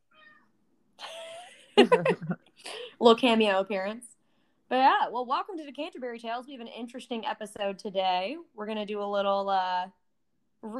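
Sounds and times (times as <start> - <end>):
pet cat meowing: 0.1 - 0.5
laughter: 1.0 - 2.4
speech: 1.8 - 4.1, 4.7 - 10.0, 10.6 - 10.7.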